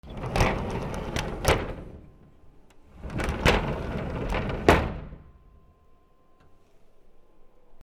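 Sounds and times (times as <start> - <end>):
sliding door: 0.0 - 5.6.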